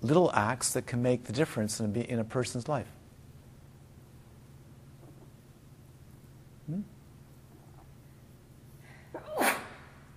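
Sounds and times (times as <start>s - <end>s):
speech: 0.0s - 3.0s
low hum: 0.0s - 10.1s
brief vocal sound: 6.7s - 6.9s
sharp sneeze: 9.1s - 10.0s.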